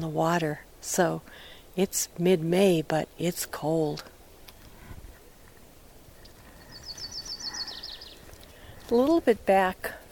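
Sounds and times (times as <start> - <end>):
speech: 0.0 - 4.1, 8.9 - 10.0
soft background noise: 0.0 - 10.0
Yellow-rumped Warbler singing on a bog mat: 6.2 - 8.9.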